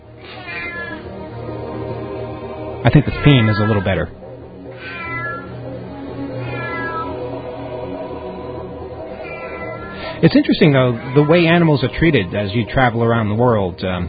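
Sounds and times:
fainter cat cries: 0.1 - 1.1, 3.0 - 4.0, 4.7 - 7.4, 9.0 - 12.4
loud drawn-out cat meow in an alley: 0.2 - 1.1, 3.0 - 4.1, 4.7 - 5.6, 6.3 - 7.3, 9.1 - 12.4
speech: 2.8 - 4.2, 10.2 - 14.0.

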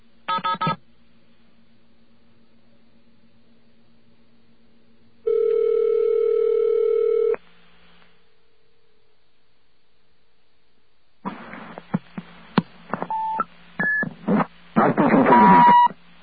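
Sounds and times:
long steady telephone line tone: 0.3 - 0.8, 5.2 - 7.4, 13.1 - 14.0, 15.3 - 16.0.

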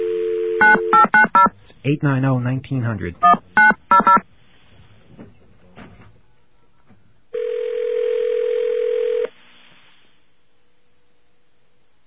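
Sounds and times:
long steady telephone tone: 0.0 - 1.5, 7.3 - 9.4
person speaking: 1.7 - 3.8
touch-tone telephone keypad beeps dialing a number on a second line: 3.2 - 4.2.

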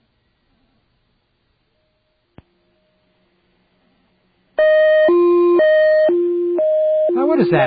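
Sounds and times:
loud buzzy hi-lo telephone tone from a dialed special number: 4.6 - 7.6.

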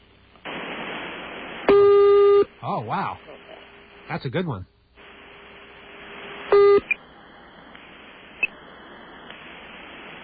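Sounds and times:
faint telephone line hiss: 0.0 - 10.2
speech: 2.6 - 3.4, 4.1 - 4.7
telephone dialing tone: 6.5 - 6.9.

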